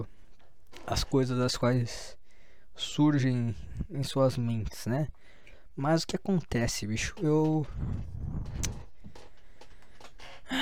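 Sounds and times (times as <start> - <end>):
chair creaking and knocking as someone shifts their weight: 0.4 - 1.2, 6.6 - 10.6
speech: 0.9 - 2.2, 2.8 - 5.2, 5.8 - 8.8.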